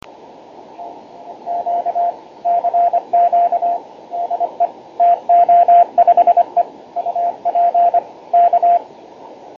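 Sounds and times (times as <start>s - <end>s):
ham radio transmission on 50.103 MHz: 0.7s - 8.9s.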